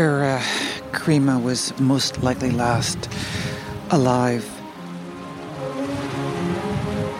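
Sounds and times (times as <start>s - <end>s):
speech: 0.0s - 4.6s
wild wind noise: 1.0s - 4.2s, 5.3s - 7.1s
frigid water surging against concrete pier posts: 1.2s - 7.1s.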